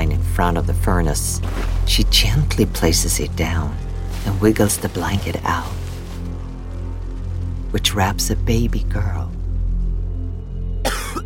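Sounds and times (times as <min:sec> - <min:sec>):
low steady rumble: 0:00.0 - 0:11.2
speech: 0:00.4 - 0:05.8, 0:07.7 - 0:09.4
man coughing: 0:10.9 - 0:11.2.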